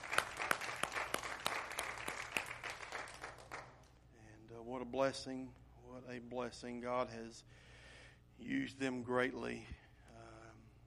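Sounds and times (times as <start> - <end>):
room full of people applauding: 0.0 - 3.9
speech: 4.9 - 7.7, 8.4 - 9.8.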